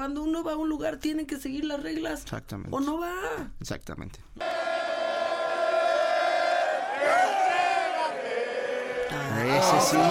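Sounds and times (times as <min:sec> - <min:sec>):
speech: 0:00.0 - 0:04.7, 0:09.1 - 0:10.0
large football stadium crowd chanting in unison: 0:04.4 - 0:10.0.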